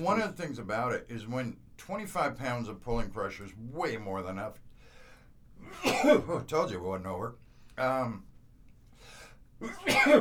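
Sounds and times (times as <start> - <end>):
speech: 0.0 - 4.7, 5.6 - 8.3, 9.6 - 10.1
person sneezing: 9.6 - 10.1.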